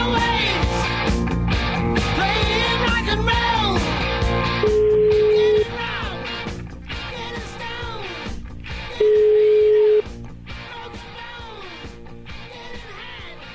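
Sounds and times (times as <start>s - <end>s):
continuous music bed: 0.0s - 13.5s
telephone ringback tone: 4.6s - 5.7s, 9.0s - 10.1s.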